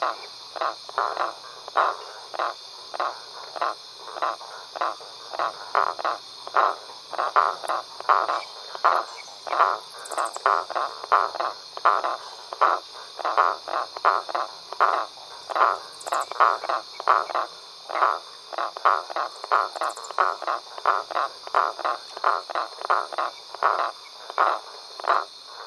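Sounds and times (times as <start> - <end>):
several frogs croaking in chorus at a pond at night: 0.0 - 25.6.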